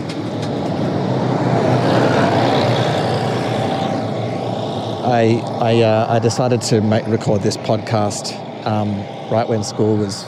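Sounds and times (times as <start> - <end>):
large vehicle engine rumbling past: 0.0 - 7.5
speech: 5.1 - 10.2.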